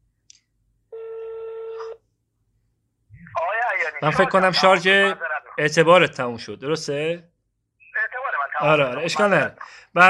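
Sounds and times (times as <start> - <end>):
telephone tone as a call is placed: 0.9 - 2.0
speech: 3.9 - 7.3, 8.6 - 10.0.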